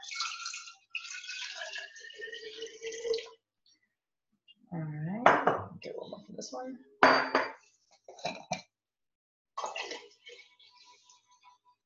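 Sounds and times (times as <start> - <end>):
filtered water poured into a container: 0.0 - 3.4, 9.6 - 11.4
dishes clinking: 5.3 - 6.0, 7.0 - 8.7
speech: 6.5 - 7.4.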